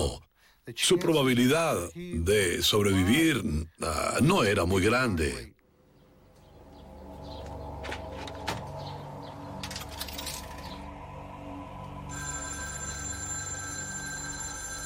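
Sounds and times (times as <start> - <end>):
speech: 0.1 - 5.5
telephone ringing with an incoming call: 12.0 - 14.8.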